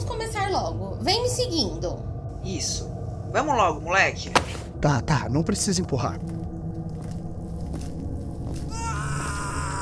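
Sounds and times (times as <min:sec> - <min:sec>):
dense rumbling haunted-maze ambience: 0:00.0 - 0:09.7
speech: 0:00.5 - 0:06.5
drawn-out wailing scream in a haunted maze: 0:08.7 - 0:09.7.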